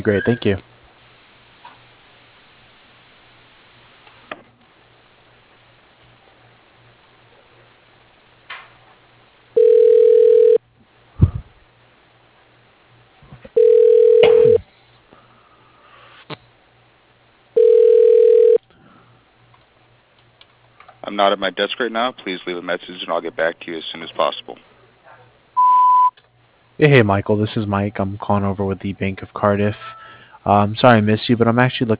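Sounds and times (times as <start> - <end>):
speech: 0.0 - 0.7, 21.4 - 24.7, 26.8 - 31.9
telephone ringback tones on a call line transferring to voicemail: 9.6 - 10.6, 13.6 - 14.6, 17.6 - 18.6
phone line clicks and line noises: 13.5 - 14.6.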